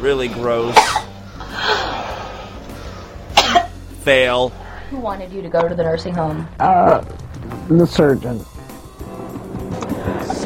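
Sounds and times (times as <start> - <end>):
speech: 0.0 - 1.0, 4.0 - 8.5
woman coughing: 0.8 - 1.8, 3.3 - 3.8.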